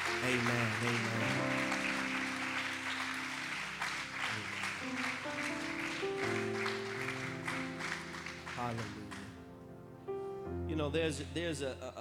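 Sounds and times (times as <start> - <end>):
crowd clapping in praise: 0.0 - 9.4
speech: 0.2 - 1.8, 8.6 - 9.0, 10.8 - 11.9.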